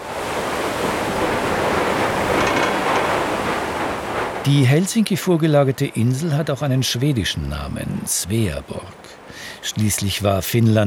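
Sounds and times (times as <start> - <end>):
ferry hull rushing through ice-covered sea: 0.0 - 10.8
speech: 4.5 - 10.8.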